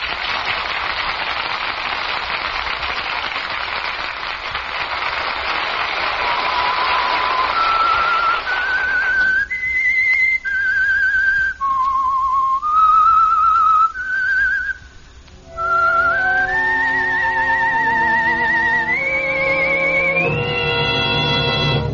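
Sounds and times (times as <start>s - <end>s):
steady rain-like hiss: 0.0s - 21.9s
whistled theme melody introducing a radio mystery drama: 6.3s - 21.9s.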